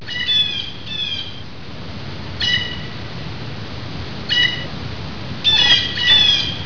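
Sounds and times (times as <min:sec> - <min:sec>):
Blue Jay call: 0:00.0 - 0:01.4, 0:02.4 - 0:02.9, 0:04.3 - 0:04.7, 0:05.4 - 0:06.6.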